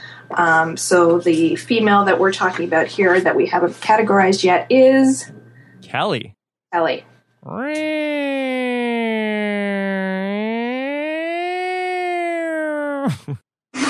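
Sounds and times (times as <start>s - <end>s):
speech: 0.3s - 8.1s, 13.1s - 13.4s
siren wailing outside: 8.0s - 12.4s.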